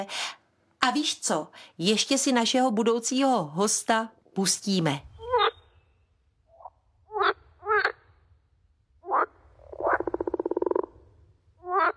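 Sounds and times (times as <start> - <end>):
speech: 0.0 - 5.1
frog croaking: 5.2 - 5.7, 6.5 - 8.2, 9.0 - 11.9.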